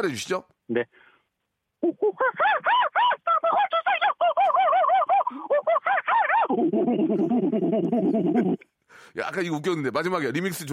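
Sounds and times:
speech: 0.0s - 1.1s, 1.8s - 2.9s, 6.5s - 10.7s
laughter: 1.8s - 8.6s
person imitating an excited wild monkey with hooting and screeching calls: 1.8s - 8.7s.

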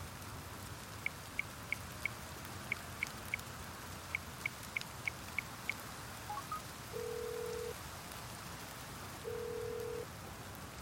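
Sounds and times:
rain pattering: 0.0s - 10.7s
telephone keypad tones as a number is dialed: 6.3s - 7.7s, 9.3s - 10.0s.

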